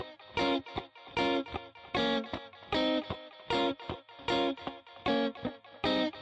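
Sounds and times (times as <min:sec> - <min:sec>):
echo guitar skank loop: 0:00.0 - 0:06.2.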